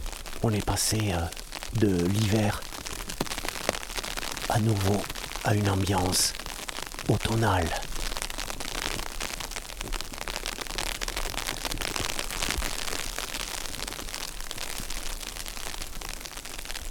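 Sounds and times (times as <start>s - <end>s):
rain falling on leaves and melting snow: 0.0s - 16.9s
speech: 0.4s - 2.7s, 4.5s - 6.4s, 7.0s - 7.9s.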